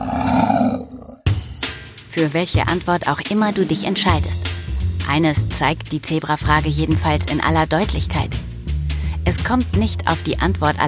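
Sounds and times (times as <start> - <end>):
tiger roaring: 0.0 - 1.3, 3.4 - 4.4
speech: 2.2 - 4.5, 5.1 - 8.4, 9.2 - 10.8.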